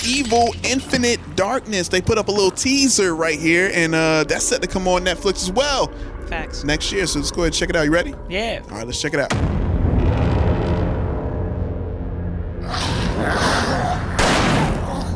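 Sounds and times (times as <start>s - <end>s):
speech: 0.0s - 9.6s
low rumble: 0.6s - 13.4s
gunshots from an animated series teaser, blasting zombies: 14.1s - 15.0s.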